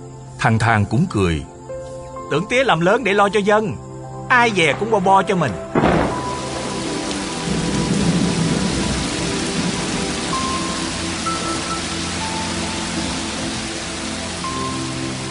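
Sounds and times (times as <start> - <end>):
speech: 0.4 - 1.5, 2.3 - 5.9
heavy rain pouring: 4.3 - 15.2
low rumble of thunder: 4.6 - 13.8.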